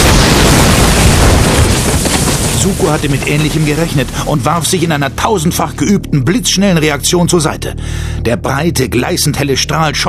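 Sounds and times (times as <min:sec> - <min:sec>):
glass sphere exploding: 0:00.0 - 0:05.0
speech: 0:02.6 - 0:10.0.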